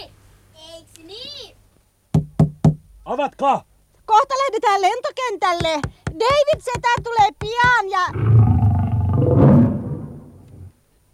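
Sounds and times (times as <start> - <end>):
speech: 3.2 - 8.4
lion roaring: 8.1 - 10.7.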